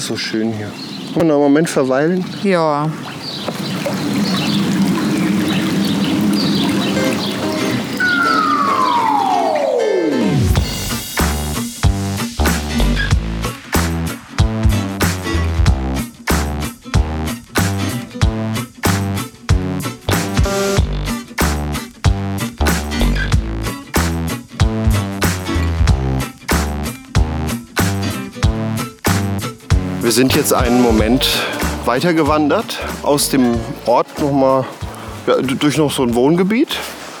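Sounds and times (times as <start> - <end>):
speech: 0.0 - 3.8, 30.2 - 37.0
rushing trickling water of a brook beside a hiking trail: 0.0 - 11.2, 29.7 - 37.1
loud rhythmic music with a driving beat: 7.5 - 35.2.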